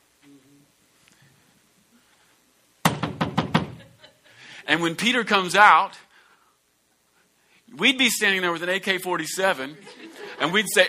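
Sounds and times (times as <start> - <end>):
knocking on a wooden door: 2.8 - 3.8
speech: 4.7 - 6.0, 7.8 - 10.8
laughter: 9.6 - 10.8.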